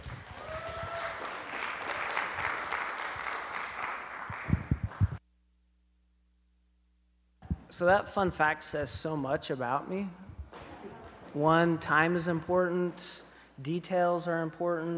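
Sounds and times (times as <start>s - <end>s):
audience applause: 0.0s - 5.2s
speech: 7.8s - 10.2s, 11.4s - 14.9s.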